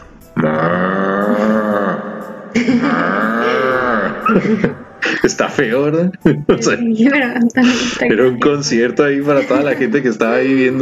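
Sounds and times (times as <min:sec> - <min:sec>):
person imitating a bull's bellow with deep groaning roars: 0:00.4 - 0:04.3
laughter: 0:02.6 - 0:05.5, 0:09.2 - 0:10.7
speech: 0:04.3 - 0:10.7.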